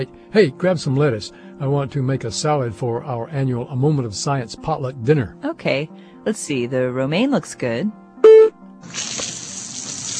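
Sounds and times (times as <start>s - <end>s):
speech: 0.0s - 9.1s
water spray misting produce at a grocery store: 8.8s - 10.1s.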